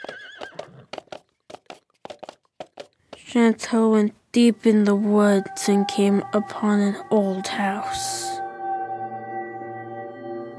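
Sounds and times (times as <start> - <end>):
horse whinnying with a high wavering cry: 0.0 - 0.9
horse hooves pounding in a galloping rhythm: 0.0 - 5.4
speech: 3.3 - 8.4.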